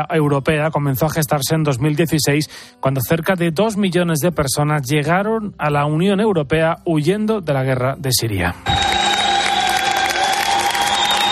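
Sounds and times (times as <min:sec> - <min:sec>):
speech: 0:00.0 - 0:09.0
large crowd applauding at a train station: 0:08.7 - 0:11.2.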